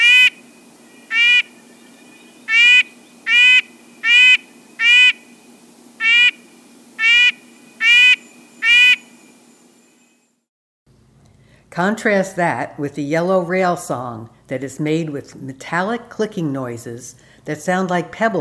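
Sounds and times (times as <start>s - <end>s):
red-breasted nuthatch uttering nasal honking notes: 0.0s - 0.4s, 2.5s - 5.2s, 7.0s - 9.1s
speech: 11.8s - 18.3s.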